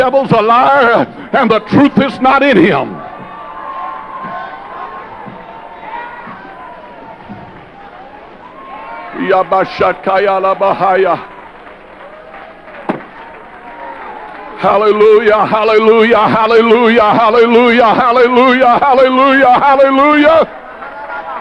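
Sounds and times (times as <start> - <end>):
speech: 0.0 - 3.1, 9.2 - 11.4, 14.6 - 20.6
audience stomping feet: 0.0 - 21.3
laughter: 0.0 - 21.3
noisy crowd of voices murmuring: 0.0 - 21.3.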